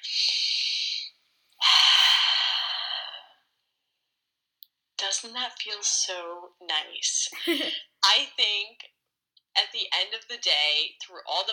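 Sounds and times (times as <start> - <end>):
deep breath in and out during a calming exercise: 1.6 - 3.4
speech: 5.2 - 9.0, 9.6 - 11.5.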